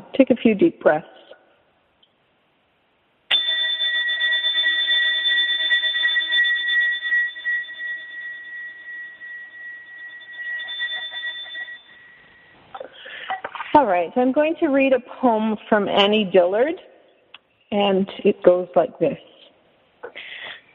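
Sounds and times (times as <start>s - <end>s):
speech: 0.1s - 1.2s, 14.0s - 16.9s, 17.7s - 19.3s
single bell struck and ringing out with bright metallic tone: 3.3s - 13.3s.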